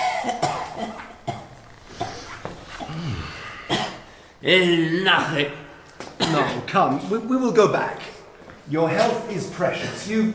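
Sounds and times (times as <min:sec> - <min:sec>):
harsh hacking coughs: 0:00.0 - 0:04.2, 0:06.1 - 0:06.7
speech: 0:04.4 - 0:05.6, 0:06.3 - 0:08.1, 0:08.7 - 0:10.3.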